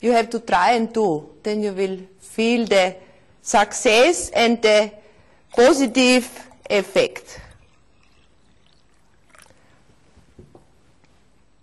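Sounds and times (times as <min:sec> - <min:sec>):
speech: 0:00.0 - 0:07.4
water pouring into a vessel for nasal rinse: 0:05.4 - 0:09.8.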